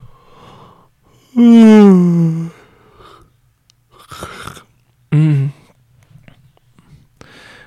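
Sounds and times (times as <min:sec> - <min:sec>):
quiet breathing: 0:00.0 - 0:01.4, 0:02.4 - 0:04.6, 0:05.5 - 0:07.6
person yawning: 0:01.2 - 0:02.7, 0:04.0 - 0:05.6
speech: 0:01.4 - 0:01.7.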